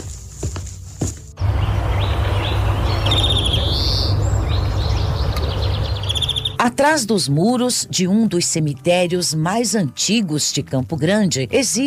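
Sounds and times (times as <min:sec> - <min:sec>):
low rumble of wind: 0:01.4 - 0:06.6
several birds chirping and singing outdoors: 0:01.4 - 0:06.6
speech: 0:06.6 - 0:11.8.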